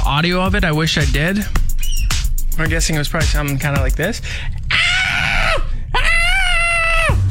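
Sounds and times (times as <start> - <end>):
speech: 0.1 - 4.6
parrot giving harsh raspy squawks: 1.7 - 2.2
parrot shrieking like a woman screaming: 1.8 - 2.2, 4.7 - 7.2.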